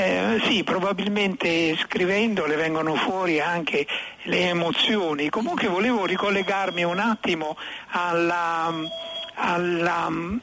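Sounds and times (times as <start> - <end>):
speech: 0.4 - 10.4
phone ringtone with bright electronic melody: 5.4 - 7.3, 8.7 - 9.4.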